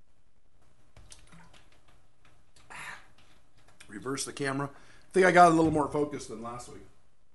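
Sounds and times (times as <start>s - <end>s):
person sipping water from a bottle: 1.0s - 3.9s
speech: 4.0s - 6.9s.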